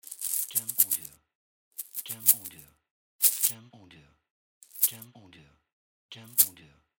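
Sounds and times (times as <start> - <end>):
coins shaking: 0.0 - 1.2, 1.8 - 2.6, 3.2 - 3.6, 4.6 - 5.0, 6.3 - 6.5.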